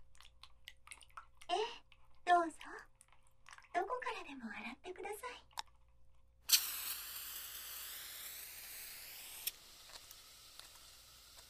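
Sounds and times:
light wet sounds: 0.0 - 6.6
aerosol can spraying carbonated body soap foam during a foot wash: 6.5 - 11.4.

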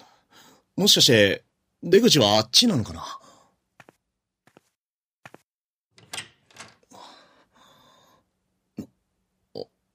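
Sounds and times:
speech: 0.8 - 3.2
soft footsteps: 3.7 - 5.5
door creaking and rattling open: 5.9 - 7.0.

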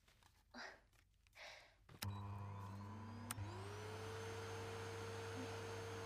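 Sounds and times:
rustling: 0.0 - 2.0
vacuum cleaner motor whirring and humming: 2.0 - 6.0.

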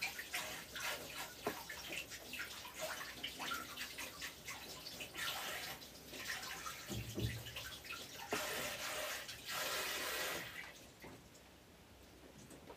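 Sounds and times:
running tap water splashing as hands are washed: 0.0 - 11.0.

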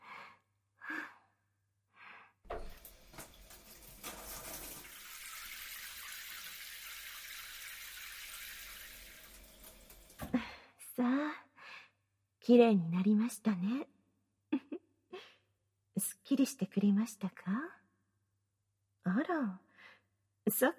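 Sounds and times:
water running to rinse off soap foam: 2.6 - 10.3
speech: 11.0 - 11.3, 12.5 - 14.0, 16.3 - 17.7, 19.2 - 19.6, 20.5 - 20.7.

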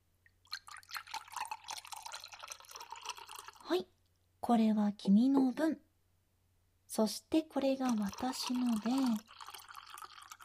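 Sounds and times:
drink pouring into a glass: 0.4 - 3.7, 7.8 - 10.4
speech: 3.7 - 5.8, 7.0 - 9.4.

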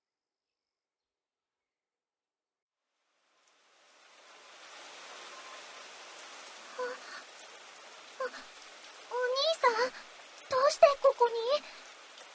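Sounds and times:
heavy rain: 3.0 - 12.3.

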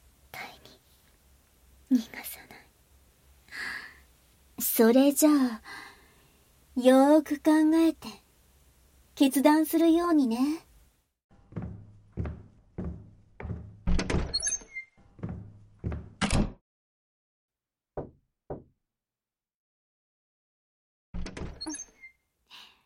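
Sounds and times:
speech: 1.9 - 2.4, 4.8 - 5.8, 6.8 - 8.2, 9.2 - 10.6
solid knocking on a door: 11.5 - 14.4, 15.2 - 16.6, 18.0 - 18.8.

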